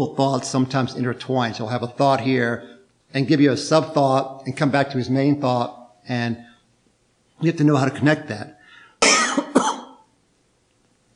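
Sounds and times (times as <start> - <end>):
speech: 0.0 - 6.5, 7.4 - 9.2
harsh cough: 9.0 - 10.1.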